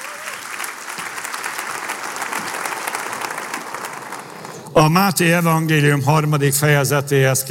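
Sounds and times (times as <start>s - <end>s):
crowd of people applauding: 0.0s - 4.9s
speech: 4.8s - 7.4s.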